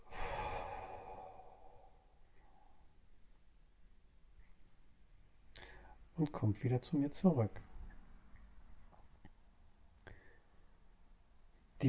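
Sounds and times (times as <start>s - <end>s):
slow breathy exhale during a guided breathing exercise: 0.0s - 2.9s
speech: 6.2s - 7.7s.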